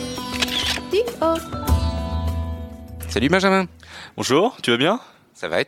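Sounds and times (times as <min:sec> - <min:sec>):
camera shutter clicks: 0:00.2 - 0:00.9
speech: 0:01.0 - 0:01.6, 0:03.1 - 0:05.6.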